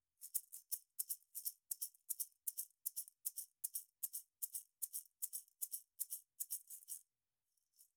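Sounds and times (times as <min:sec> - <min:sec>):
shaker MXL V6: 0:00.2 - 0:07.1.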